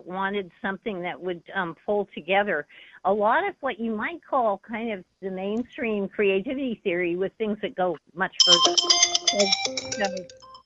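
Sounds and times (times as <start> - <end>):
speech: 0.1 - 10.4
phone ringtone electronic melody: 8.4 - 10.6.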